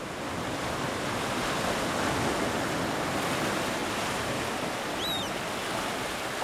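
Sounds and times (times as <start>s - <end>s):
continuous dense roar of sea surf: 0.0s - 6.4s.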